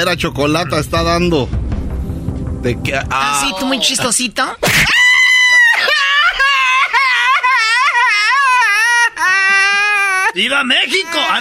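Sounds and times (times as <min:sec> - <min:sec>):
speech: 0:00.0 - 0:01.7, 0:02.6 - 0:05.2, 0:10.4 - 0:11.3
person screaming: 0:03.2 - 0:04.0, 0:04.8 - 0:06.0, 0:08.7 - 0:11.3
laughter: 0:05.3 - 0:11.3.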